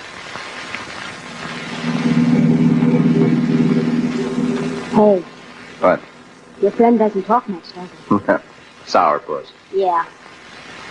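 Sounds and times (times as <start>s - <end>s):
car engine rumbling and driving off: 0.8s - 6.8s
speech: 5.0s - 10.3s.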